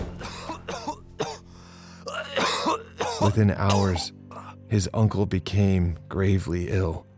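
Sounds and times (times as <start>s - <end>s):
throat clearing: 0.2s - 1.5s, 2.1s - 4.5s
harsh coughing from another room: 0.2s - 4.5s
speech: 3.2s - 7.1s.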